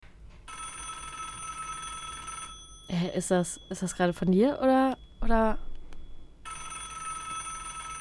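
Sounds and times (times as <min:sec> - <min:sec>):
telephone ringing: 0:00.5 - 0:04.3, 0:06.0 - 0:07.9
speech: 0:02.9 - 0:05.7.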